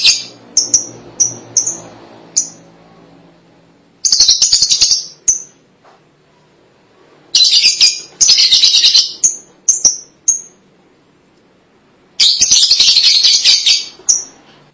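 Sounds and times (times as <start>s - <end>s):
lovebird chatter with shrill scratchy twittering: 0.0s - 2.6s, 4.0s - 5.6s, 7.4s - 10.6s, 12.2s - 14.4s.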